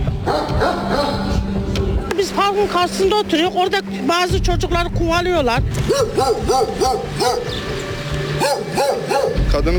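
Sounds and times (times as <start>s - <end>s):
stray dogs barking: 0.2s - 1.6s, 5.7s - 9.6s
speech: 2.4s - 7.7s, 8.4s - 9.7s.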